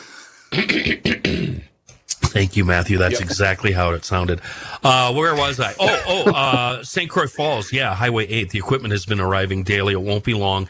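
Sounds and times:
person clearing throat: 0:00.6 - 0:01.7, 0:05.7 - 0:06.7
speech: 0:00.6 - 0:01.7, 0:02.4 - 0:10.6
laughter: 0:03.0 - 0:03.5, 0:05.3 - 0:06.8.

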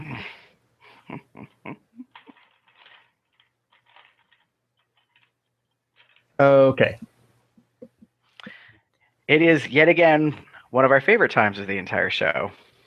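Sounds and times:
typing on a computer keyboard: 0:02.1 - 0:05.3
speech: 0:06.4 - 0:07.1, 0:09.3 - 0:12.6.

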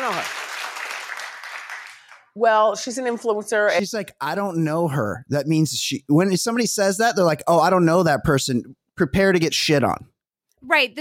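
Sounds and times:
studio audience clapping: 0:00.0 - 0:02.6
speech: 0:02.4 - 0:10.9.

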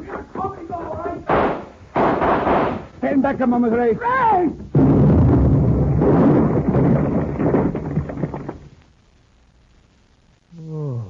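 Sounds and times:
hand grenade explosion: 0:01.3 - 0:02.9, 0:04.7 - 0:08.7
speech: 0:03.2 - 0:04.8.

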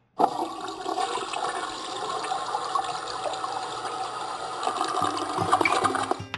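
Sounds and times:
toilet flushing with a rush of water: 0:00.0 - 0:06.2
toilet cistern hissing refill with faint whistling tone: 0:01.4 - 0:06.2.

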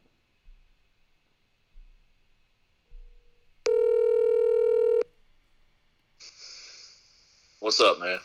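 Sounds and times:
telephone line static hiss: 0:00.0 - 0:08.2
steady telephone tone as a call is placed: 0:03.7 - 0:05.1
speech: 0:07.7 - 0:08.2.

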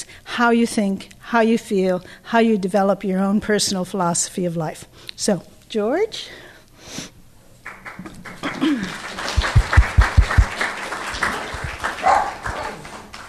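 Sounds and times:
speech: 0:00.4 - 0:07.1
applause and clapping: 0:07.6 - 0:13.2
dog barking: 0:12.0 - 0:12.8.

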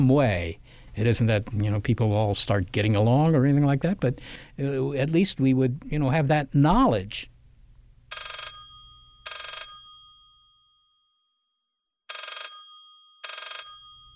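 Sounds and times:
speech: 0:00.0 - 0:07.3
old-style telephone bell ringing with a metallic jangle: 0:08.1 - 0:11.0, 0:12.1 - 0:14.1.

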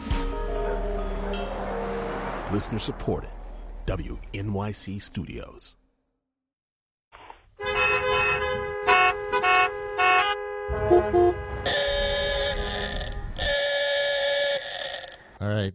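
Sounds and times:
car horns honking in New York City traffic: 0:00.3 - 0:03.0, 0:07.6 - 0:14.6
steady traffic rumble in New York City: 0:00.3 - 0:05.8, 0:07.7 - 0:13.5
speech: 0:02.5 - 0:05.8, 0:15.4 - 0:15.7.

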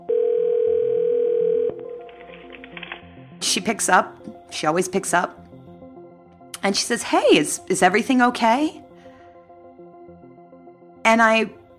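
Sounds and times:
telephone dial tone: 0:00.0 - 0:03.0
speech: 0:03.4 - 0:05.4, 0:06.6 - 0:08.8, 0:11.1 - 0:11.6.

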